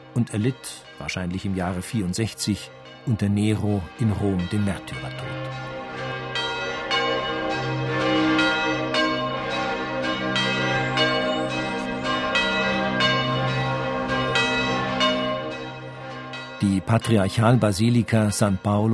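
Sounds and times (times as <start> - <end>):
large basilica church bells ringing in a full peal: 0.0 - 18.9
speech: 0.2 - 5.8, 16.6 - 18.9.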